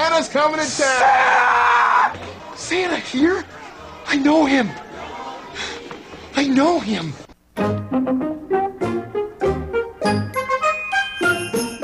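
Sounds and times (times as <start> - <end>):
speech: 0.2 - 4.8, 6.4 - 8.3
bouncy rhythmic instrumental musical intro: 7.5 - 11.8
sleigh bells jingling brightly: 10.1 - 11.8.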